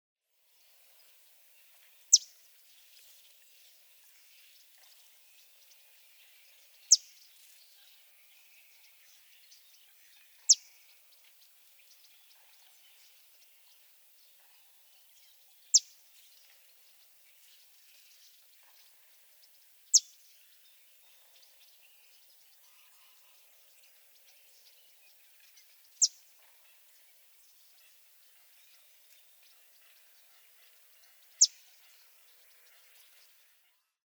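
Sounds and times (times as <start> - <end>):
Bay-breasted Warbler Setophaga castanea: 0.9 - 33.5.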